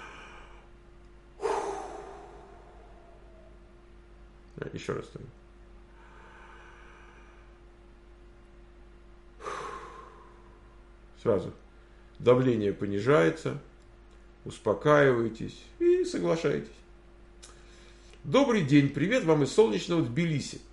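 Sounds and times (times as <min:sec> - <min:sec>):
deep noisy breathing: 0:00.0 - 0:00.8, 0:01.4 - 0:03.7, 0:05.9 - 0:07.7, 0:09.3 - 0:11.0
faint steady hum: 0:00.0 - 0:20.7
speech: 0:04.6 - 0:05.5, 0:11.2 - 0:11.6, 0:12.2 - 0:13.7, 0:14.4 - 0:16.8, 0:18.2 - 0:20.7.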